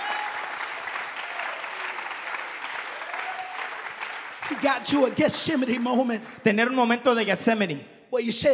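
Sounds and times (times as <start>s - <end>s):
church audience clapping during a bilingual sermon: 0.0s - 5.7s
speech: 4.5s - 8.5s.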